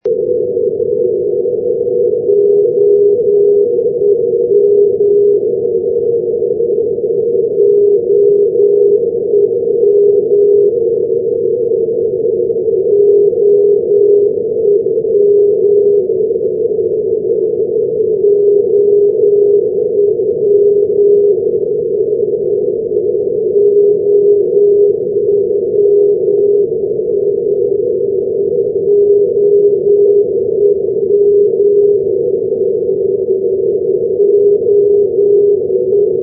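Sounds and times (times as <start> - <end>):
NDB radio beacon signal on 363.0: 0.0 - 36.2.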